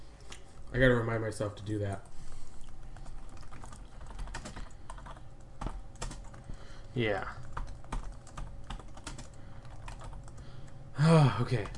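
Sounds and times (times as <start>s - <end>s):
speech: 0.7s - 2.1s, 7.0s - 7.4s, 11.0s - 11.7s
typing on a computer keyboard: 3.0s - 6.5s, 7.3s - 10.8s, 11.5s - 11.7s.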